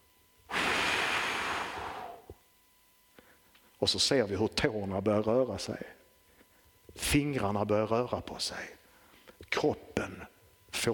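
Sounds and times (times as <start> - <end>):
deep breath blown out: 0.5 - 2.3
speech: 3.8 - 6.0, 7.1 - 8.8, 9.6 - 10.9.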